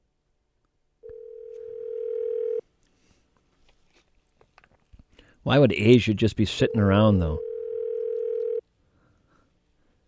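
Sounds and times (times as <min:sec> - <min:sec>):
phone ringback tone: 0:01.0 - 0:02.6, 0:06.6 - 0:08.6
speech: 0:05.4 - 0:07.5.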